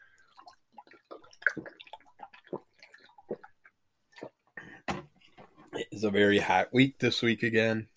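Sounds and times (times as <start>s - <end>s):
person drinking water with wet clicks and gulps: 0.0s - 5.9s
speech: 6.0s - 7.9s.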